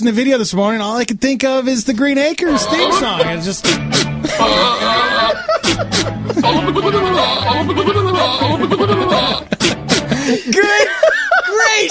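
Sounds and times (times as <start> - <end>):
speech: 0.0 - 9.5
goats bleating in wavering nasal cries: 2.5 - 5.5, 6.5 - 9.5
laughter: 2.5 - 11.8.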